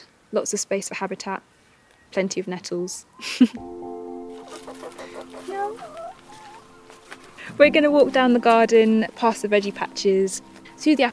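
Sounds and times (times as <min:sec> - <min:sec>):
speech: 0:00.3 - 0:03.9, 0:04.7 - 0:06.1, 0:07.6 - 0:11.1
hens clucking in a garden: 0:03.2 - 0:11.1.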